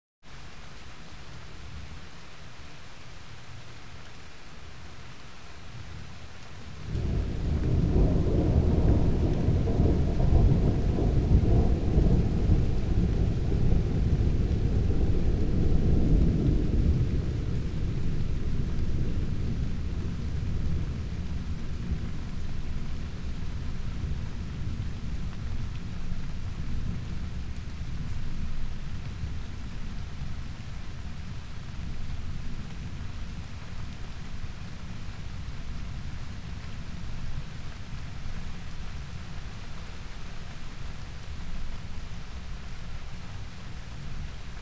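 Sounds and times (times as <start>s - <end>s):
rolling thunder: 6.6s - 29.7s.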